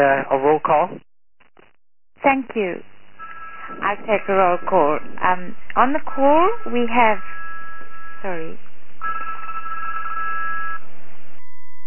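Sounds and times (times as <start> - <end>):
speech: 0.0 - 1.1, 2.2 - 2.9, 3.7 - 7.4, 8.2 - 9.3
telephone ringing over a phone line: 3.2 - 8.4, 9.0 - 10.8.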